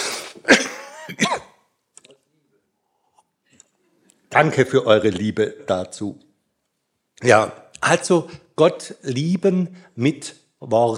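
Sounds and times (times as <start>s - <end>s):
harsh throaty coughs from a person with a cold: 0.0s - 1.7s
speech: 0.4s - 1.4s, 4.4s - 6.3s, 7.2s - 10.9s.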